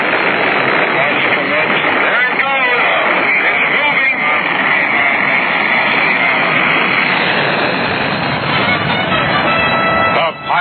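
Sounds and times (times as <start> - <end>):
Apollo 10 rocket engines roaring at launch: 0.0 - 10.5
voice: 0.9 - 5.4.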